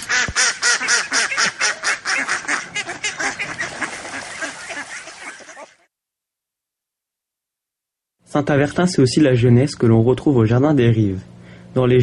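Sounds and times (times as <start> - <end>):
ducks quacking: 0.0 - 5.9
speech: 8.4 - 12.0.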